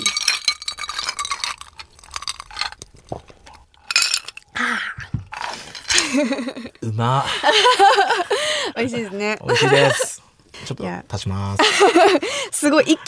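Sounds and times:
glasses clinking in a shochu toast: 0:00.0 - 0:02.9, 0:03.8 - 0:04.5, 0:05.4 - 0:06.6
clattering: 0:00.0 - 0:04.4, 0:05.3 - 0:06.4
laughter: 0:06.0 - 0:10.2, 0:11.6 - 0:12.3
speech: 0:06.2 - 0:10.1, 0:10.7 - 0:13.0.

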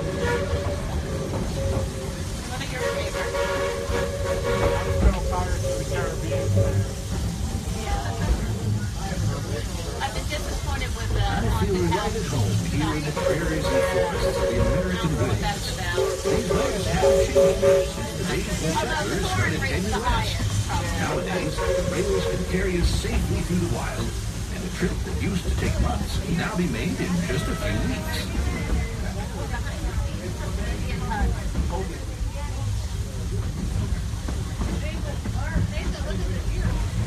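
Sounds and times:
steam train whistle-like tones: 0:00.0 - 0:07.0, 0:13.1 - 0:15.0, 0:15.8 - 0:18.3, 0:21.2 - 0:22.6
steam train running on rails with rumble, hissing and clatter: 0:00.0 - 0:37.0
voices: 0:00.0 - 0:37.0.

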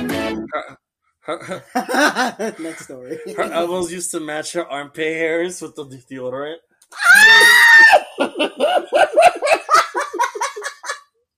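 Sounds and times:
speech: 0:00.4 - 0:09.5
person laughing: 0:01.3 - 0:03.8, 0:07.7 - 0:11.0
person screaming: 0:07.0 - 0:08.1.

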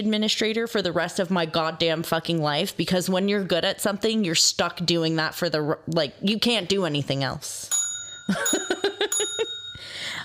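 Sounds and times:
speech: 0:00.0 - 0:08.8
bell dinging: 0:07.7 - 0:10.2.

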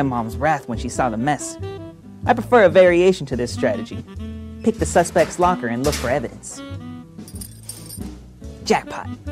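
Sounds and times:
speech: 0:00.0 - 0:06.8, 0:08.7 - 0:09.3
steady tonal musical background: 0:00.0 - 0:09.3
keys jangling: 0:07.2 - 0:08.2.

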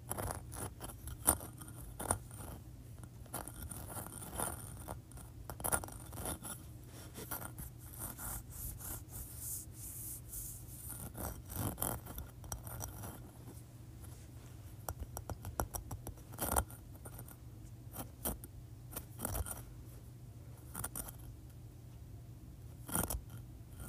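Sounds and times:
steady low hum: 0:00.0 - 0:23.8
large textured sea shell handled, scraping and clicking: 0:00.1 - 0:06.6, 0:10.9 - 0:13.2, 0:14.8 - 0:17.4, 0:18.0 - 0:19.6, 0:20.7 - 0:21.3, 0:22.8 - 0:23.8.

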